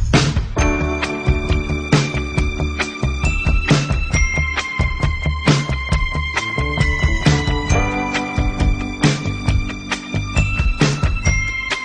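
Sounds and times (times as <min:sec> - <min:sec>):
pop orchestra music: 0:00.1 - 0:11.8.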